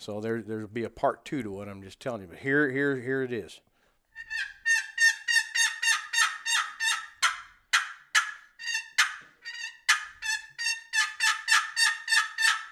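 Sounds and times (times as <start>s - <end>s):
speech: 0.0s - 4.5s
turkey call imitating an excited hen yelp with cuts: 4.2s - 12.7s.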